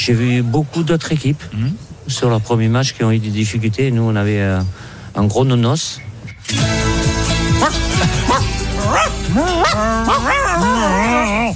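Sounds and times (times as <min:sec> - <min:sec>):
speech: 0:00.0 - 0:11.5
dog barking, yipping and whining: 0:07.6 - 0:11.5.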